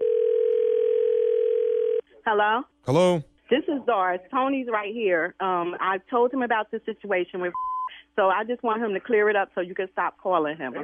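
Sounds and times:
telephone dial tone before a three-way call: 0:00.0 - 0:02.0
speech: 0:02.3 - 0:10.8.

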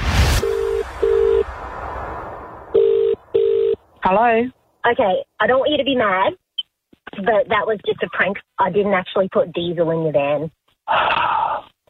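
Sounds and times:
phone line electronic ringback tone: 0:00.4 - 0:01.4, 0:02.8 - 0:03.8
speech: 0:04.1 - 0:06.4, 0:07.1 - 0:11.3.

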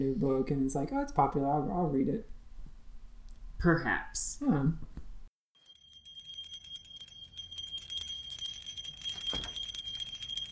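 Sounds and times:
speech: 0:00.0 - 0:02.4, 0:03.6 - 0:05.0
small hand bell rung to summon someone: 0:05.6 - 0:10.4.

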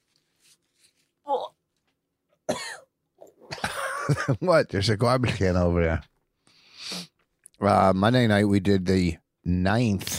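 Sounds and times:
speech: 0:04.1 - 0:06.1, 0:07.6 - 0:10.1
man blowing his nose: 0:06.7 - 0:07.2.

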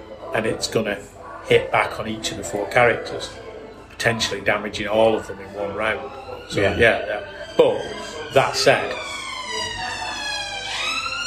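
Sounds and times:
speech: 0:00.4 - 0:03.4, 0:04.0 - 0:09.1
emergency vehicle siren passing along a Manchester street: 0:04.6 - 0:11.2.

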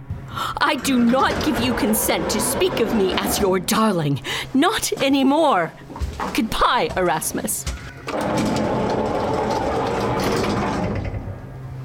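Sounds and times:
elevator motor running as the car descends to the ground floor: 0:00.5 - 0:04.0, 0:07.8 - 0:11.8
speech: 0:00.6 - 0:08.8.

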